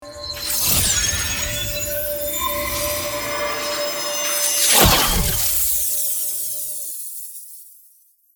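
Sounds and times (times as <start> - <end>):
magical fairy attack spell effect: 0.0 - 7.3.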